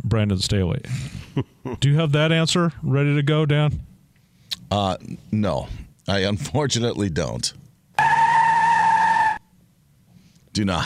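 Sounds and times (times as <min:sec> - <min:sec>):
speech: 0:00.1 - 0:03.9, 0:04.7 - 0:07.6, 0:10.6 - 0:10.8
car tire screeching on pavement: 0:08.0 - 0:09.4.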